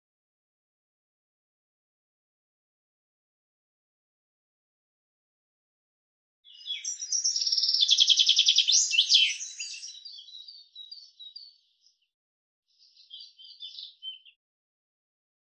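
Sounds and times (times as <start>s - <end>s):
common chaffinch song with fast bright descending trill: 6.5s - 12.1s, 12.7s - 14.4s.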